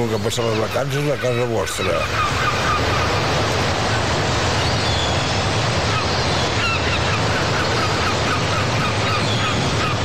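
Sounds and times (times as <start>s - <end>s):
speech: 0.0s - 2.9s
crashing sea waves: 0.0s - 10.0s
seagulls calling: 0.0s - 10.0s.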